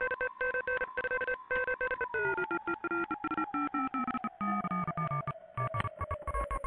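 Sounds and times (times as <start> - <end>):
filtered morse code tones: 0.0 - 6.6.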